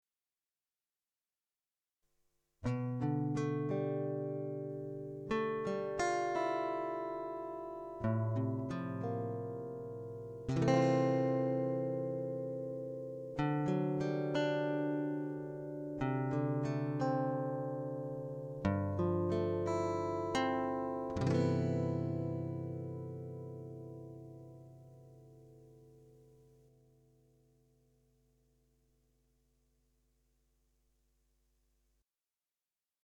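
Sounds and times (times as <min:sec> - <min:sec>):
guitar motif in C major: 0:02.6 - 0:28.0.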